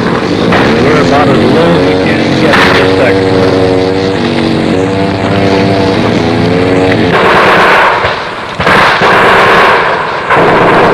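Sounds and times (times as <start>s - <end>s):
heavy gunfire in a combat zone: 0.0s - 1.7s, 2.4s - 3.1s, 6.7s - 10.9s
steady droning hum with rippling tones: 0.0s - 10.9s.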